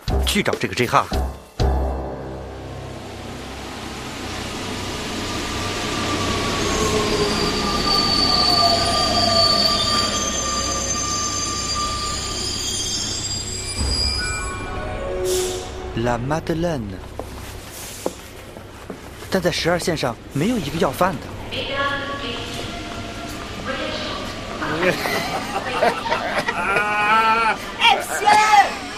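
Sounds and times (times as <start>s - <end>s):
metro train rumbling in to a stop: 0.0s - 28.9s
speech: 0.4s - 1.4s, 16.0s - 17.1s, 19.3s - 21.9s, 24.7s - 26.9s
high-pitched metro train wheel squeals: 4.8s - 15.5s
laughter: 24.6s - 28.3s.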